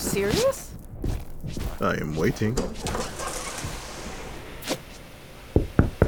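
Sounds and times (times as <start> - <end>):
speech: 0.1 - 0.6, 1.8 - 3.1
firm knocking on a door: 5.6 - 6.0.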